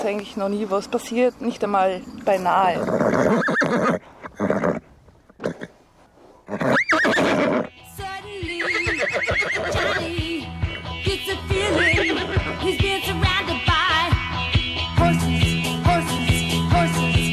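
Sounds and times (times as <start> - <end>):
speech: 0.0 - 4.6
busy tonal outdoor noise: 0.0 - 17.3
working horse neighing: 2.7 - 5.8, 6.4 - 7.7, 8.6 - 12.7.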